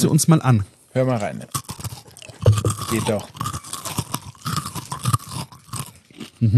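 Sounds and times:
speech: 0.0 - 1.6, 2.9 - 3.4, 6.4 - 6.5
crunchy snack being chewed: 1.2 - 6.5.

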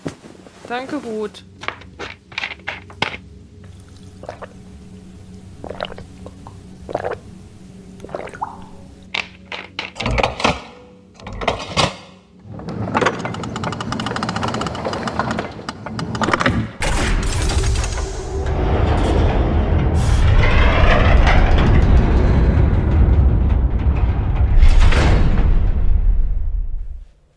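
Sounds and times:
low steady hum: 0.0 - 9.6
speech: 0.7 - 1.6
person drinking water: 3.7 - 4.8, 5.6 - 7.3, 8.0 - 9.0
mechanical door rising out of the floor: 9.9 - 26.8.

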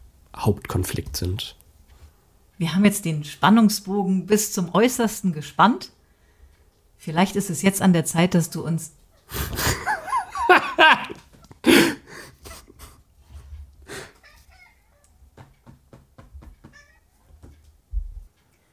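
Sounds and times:
speech: 0.4 - 1.6, 2.6 - 6.0, 7.0 - 9.6, 10.5 - 11.3
laughter: 9.4 - 13.0
cat meowing and chirping: 14.2 - 15.2, 16.6 - 17.4.

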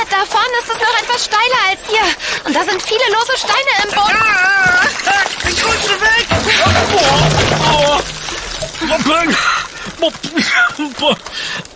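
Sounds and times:
speech: 0.2 - 8.2, 8.8 - 11.7
faint dripping: 4.6 - 11.7
buckets of water spilling over someone: 4.7 - 10.5.

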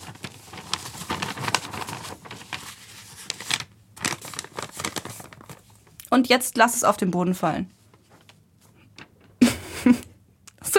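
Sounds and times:
sheet of paper being picked up and folded in the middle: 0.0 - 6.0, 7.8 - 9.4
speech: 6.1 - 7.8.

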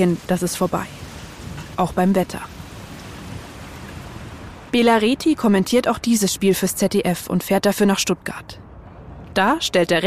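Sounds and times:
speech: 0.0 - 1.0, 1.8 - 2.5, 4.7 - 8.6, 9.4 - 10.0
heavy rain pouring down during a thunderstorm: 0.0 - 5.4.

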